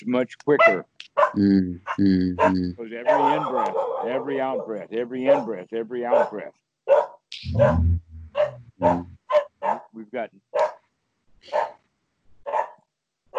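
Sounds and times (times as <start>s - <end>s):
speech: 0.0s - 8.0s, 8.8s - 9.2s, 10.0s - 10.6s
dogs barking at strangers in yard: 0.6s - 1.4s, 2.4s - 7.8s, 8.4s - 9.9s, 10.6s - 10.8s, 11.5s - 11.8s, 12.5s - 12.8s.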